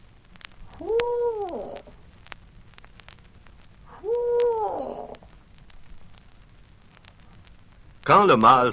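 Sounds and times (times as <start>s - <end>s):
owl hoot calls: 0.7s - 2.0s, 3.9s - 5.2s
speech: 8.1s - 8.7s.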